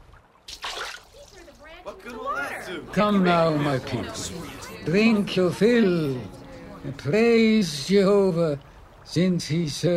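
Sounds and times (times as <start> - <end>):
tree branch thrown into water splashing: 0.4 - 1.4
speech: 1.7 - 9.9.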